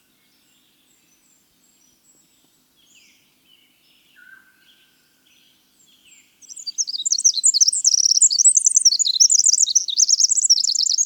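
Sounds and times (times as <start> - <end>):
winter wren singing: 5.9 - 11.0.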